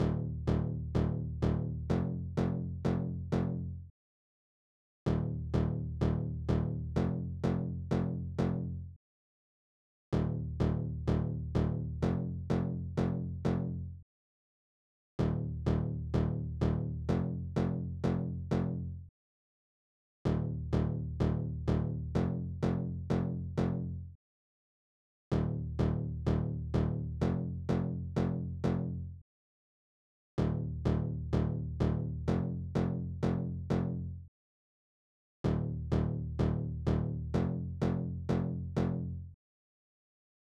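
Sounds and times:
bass in D sharp minor: 0.0s - 3.9s, 5.1s - 9.0s, 10.1s - 14.0s, 15.2s - 19.1s, 20.2s - 24.2s, 25.3s - 29.2s, 30.4s - 34.3s, 35.4s - 39.4s.

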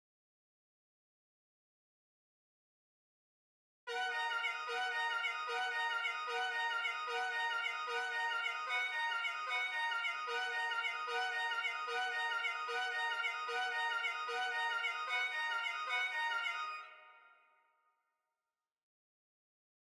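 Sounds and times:
violin loop in D minor at 150 BPM: 3.9s - 17.2s.

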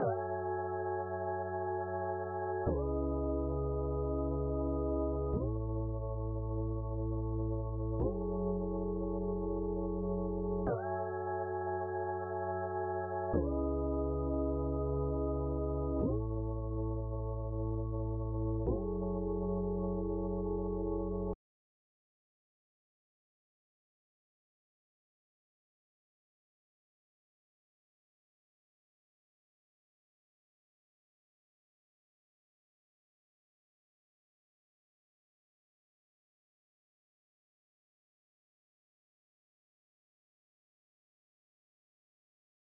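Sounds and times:
C# minor sine pad synth loop at 90 BPM: 0.0s - 21.4s.

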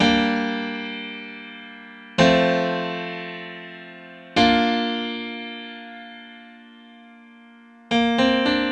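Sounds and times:
grand piano in G minor: 0.0s - 8.7s.

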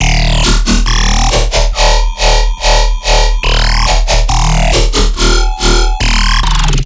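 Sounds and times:
riddim bass loop in D sharp: 0.0s - 6.8s.

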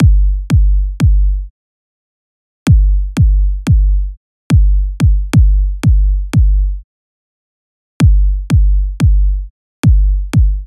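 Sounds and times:
trap kick drum: 0.0s - 1.3s, 2.7s - 6.6s, 8.0s - 9.3s, 9.9s - 10.6s.

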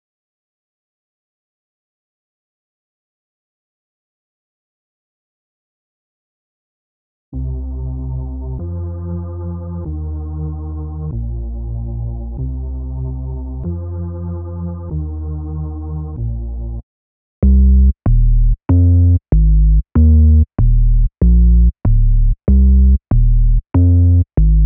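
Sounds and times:
bass melody loop in D sharp major at 95 BPM: 7.4s - 16.8s, 17.4s - 24.6s.

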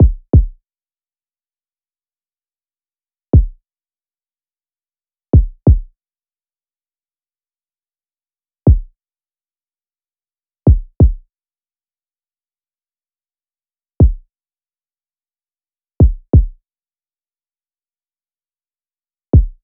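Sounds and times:
RnB kick drum loop at 90 BPM: 0.0s - 0.6s, 3.4s - 3.6s, 5.4s - 5.9s, 8.7s - 8.9s, 10.7s - 11.2s, 16.0s - 16.6s, 19.4s - 19.6s.

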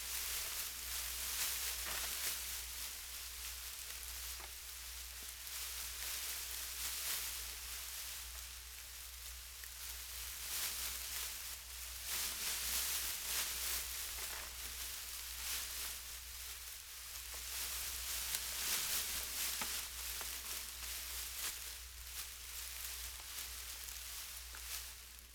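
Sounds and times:
grass moving in the wind: 0.0s - 25.3s.

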